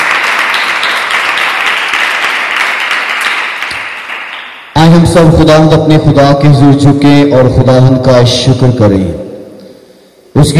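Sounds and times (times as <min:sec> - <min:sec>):
congregation applauding at a church service: 0:00.0 - 0:04.8
speech: 0:05.0 - 0:09.2, 0:10.4 - 0:10.5.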